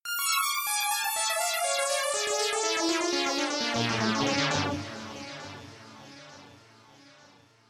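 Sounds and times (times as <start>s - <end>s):
arpeggios with echo effect: 0.1s - 7.6s.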